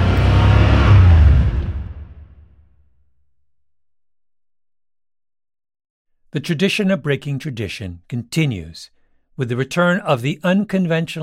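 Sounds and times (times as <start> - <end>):
car engine revving: 0.0 - 2.7
speech: 6.3 - 11.2.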